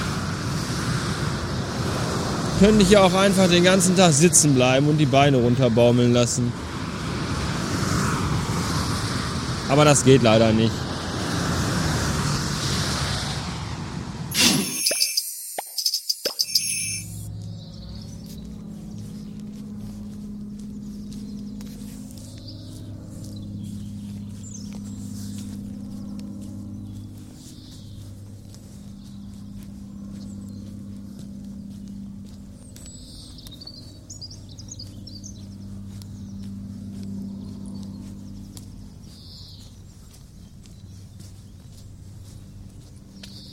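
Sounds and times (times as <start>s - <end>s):
single-engine propeller plane engine drone in the sky: 0.0s - 43.5s
birds chirping outdoors: 2.6s - 6.3s, 14.4s - 43.5s
speech: 2.6s - 6.7s, 9.7s - 10.8s.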